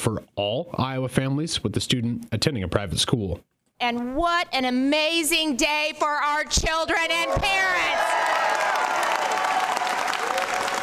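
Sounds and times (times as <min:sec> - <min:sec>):
speech: 0:00.0 - 0:08.4
crowd of legislators cheering and applauding in a large indoor space: 0:07.4 - 0:10.8.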